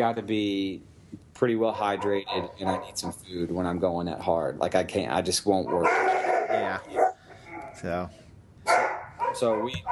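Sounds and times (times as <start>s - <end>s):
speech: 0.0s - 7.0s, 7.8s - 9.9s
dog barking: 1.9s - 3.1s, 5.7s - 7.8s, 8.7s - 9.9s.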